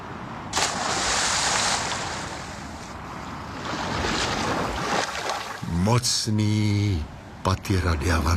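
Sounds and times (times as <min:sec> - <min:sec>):
ocean waves washing ashore in hissing surges: 0:00.0 - 0:06.0
speech: 0:05.9 - 0:08.3.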